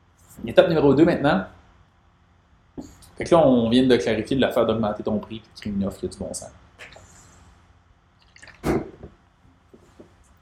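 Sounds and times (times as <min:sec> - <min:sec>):
speech: 0:00.4 - 0:01.6, 0:02.8 - 0:06.9
liquid clicks and mouth sounds: 0:08.2 - 0:09.0
person sipping a drink: 0:08.2 - 0:09.0
person gulping a drink: 0:08.2 - 0:09.1.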